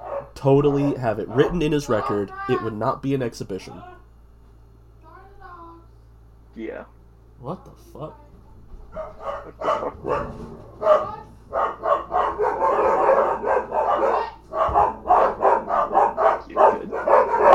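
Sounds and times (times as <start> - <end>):
dogs barking: 0.0 - 2.2, 8.8 - 17.5
speech: 0.4 - 4.0, 6.6 - 8.2, 8.9 - 11.8.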